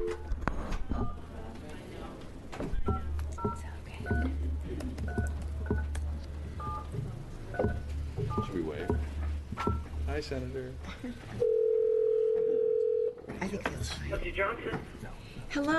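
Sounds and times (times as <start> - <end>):
low murmur: 0.1 - 15.7
short telephone keypad beeps: 5.1 - 5.9, 6.6 - 6.9, 7.5 - 9.1, 9.6 - 9.9
speech: 10.3 - 11.5, 13.5 - 15.7
telephone dial tone: 11.5 - 13.1.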